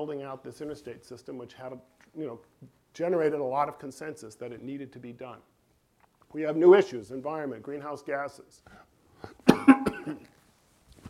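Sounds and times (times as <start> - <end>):
speech: 0.0 - 5.6, 6.3 - 8.8, 9.5 - 10.3
person coughing: 9.3 - 10.3.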